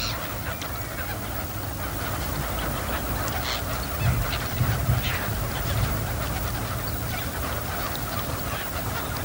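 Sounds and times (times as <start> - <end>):
large flock of wild ducks quacking and honking on wetland: 0.0 - 9.2.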